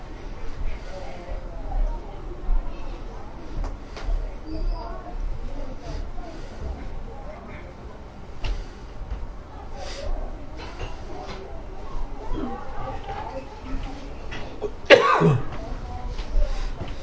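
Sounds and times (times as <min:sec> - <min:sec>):
steady low murmur: 0:00.0 - 0:17.0
single sharp cough: 0:14.6 - 0:15.6.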